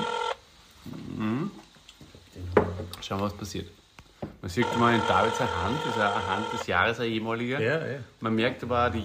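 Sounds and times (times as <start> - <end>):
electronic Spanish telephone ringing tone: 0.0 - 0.4, 4.6 - 6.7
short low vocal sound: 0.9 - 1.6
speech: 3.0 - 3.8, 4.4 - 9.0.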